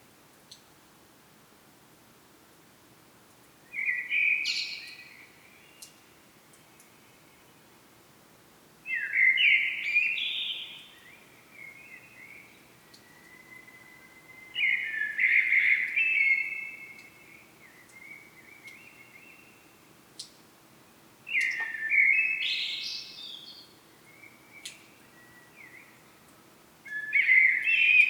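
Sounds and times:
Common blackbird fluted song phrases: 8.9s - 19.8s, 21.3s - 28.0s.

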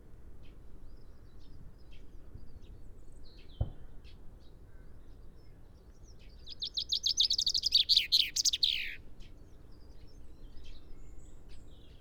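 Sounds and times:
brief knock: 3.6s - 3.9s
common chaffinch Fringilla coelebs singing: 6.5s - 9.0s.

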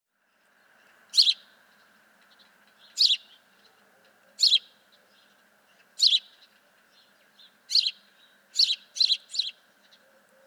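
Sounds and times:
house sparrow Passer domesticus chirping: 1.2s - 1.5s, 2.4s - 3.4s, 4.4s - 5.3s, 6.0s - 10.4s.

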